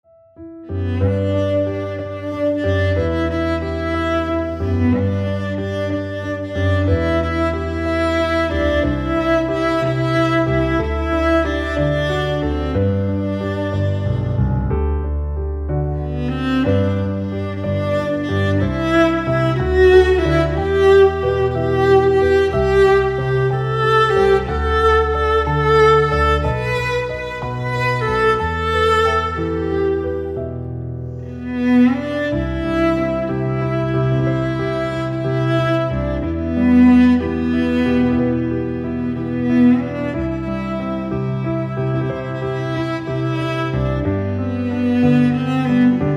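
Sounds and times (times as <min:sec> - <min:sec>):
piano: 0:00.0 - 0:46.1
cello: 0:00.4 - 0:46.1.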